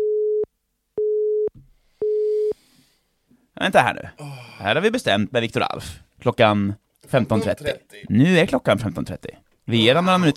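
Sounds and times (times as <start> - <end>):
telephone busy signal beeps: 0.0 - 2.5
speech: 3.6 - 10.3.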